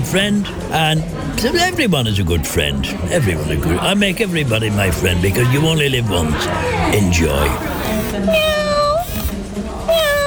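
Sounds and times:
laughter: 0.0 - 8.4
speech: 0.1 - 8.8
robotic toy pet making flat electronic meows: 6.8 - 10.2.

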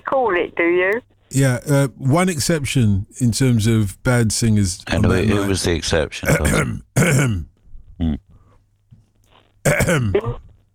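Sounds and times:
speech: 0.2 - 8.2, 9.6 - 10.5
man clearing his throat: 6.2 - 8.3, 9.7 - 10.6.

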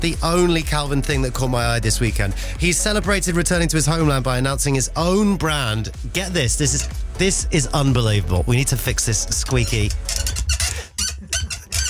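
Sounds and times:
speech: 0.0 - 10.3
microphone stand squeaking: 6.0 - 11.8.

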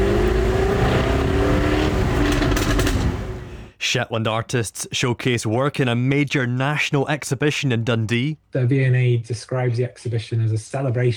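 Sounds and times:
ultra-rare Jaguar sports car engine roaring around Lerwick Shetland: 0.0 - 3.7
speech: 3.9 - 11.1.

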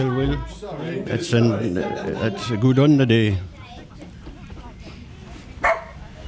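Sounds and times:
speech: 0.0 - 3.5
low steady murmur: 0.0 - 6.2
golden retriever champion dog barking at a show yard: 5.6 - 6.0.

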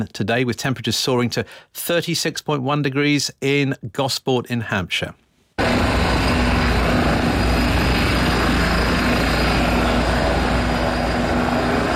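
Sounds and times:
speech: 0.0 - 5.2
helicopter hovering over a crash scene on the M25 near Godstone: 5.6 - 11.9.

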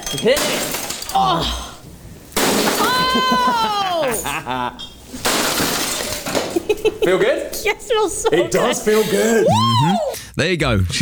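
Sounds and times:
glass being smashed in a rage room: 0.0 - 10.1
laughter: 0.0 - 10.3
speech: 0.1 - 1.7, 3.1 - 5.6, 6.6 - 10.9
high falling shout: 2.4 - 10.2.

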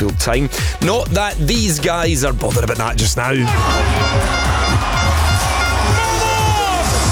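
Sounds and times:
speech: 0.0 - 5.0
loud dense outdoor crowd roaring and cheering at a street celebration: 3.2 - 7.1
horns at a street celebration: 3.4 - 7.1.

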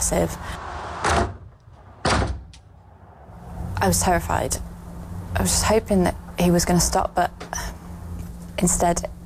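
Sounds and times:
speech: 0.1 - 0.6, 3.8 - 4.7, 5.4 - 7.7, 8.6 - 9.2
door rattling: 1.0 - 2.8.

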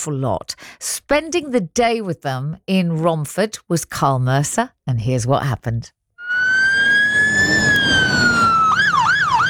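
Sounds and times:
speech: 0.0 - 6.0
London Fire Brigade fire engine siren in Romford: 6.2 - 9.4
traffic rumble: 6.4 - 9.4.

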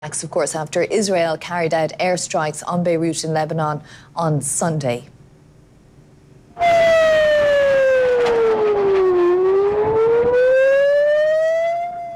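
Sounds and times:
speech: 0.0 - 5.2
air raid siren wailing: 6.6 - 12.1.

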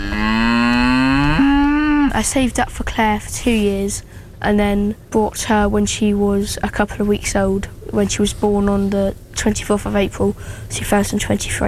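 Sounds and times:
cow mooing: 0.0 - 2.2
speech: 2.2 - 11.6.

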